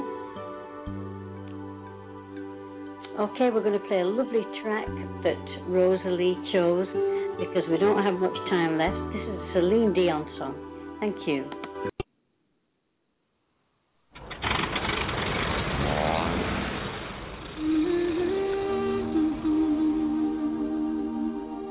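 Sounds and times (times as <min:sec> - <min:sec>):
speech: 0:03.2 - 0:11.6
loud roar like a motorbike engine revving: 0:14.2 - 0:20.0
rising whining tones: 0:16.0 - 0:21.7.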